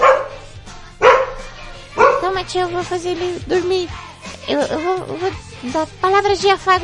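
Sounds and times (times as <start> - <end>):
dog barking: 0.0 - 2.4
speech: 2.4 - 6.8.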